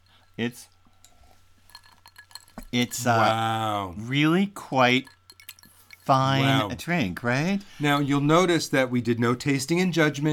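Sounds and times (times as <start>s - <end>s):
two margarita glasses with ice clinking in a toast: 0.0s - 3.3s, 4.8s - 6.7s
speech: 0.4s - 0.8s, 2.7s - 5.2s, 6.1s - 10.3s.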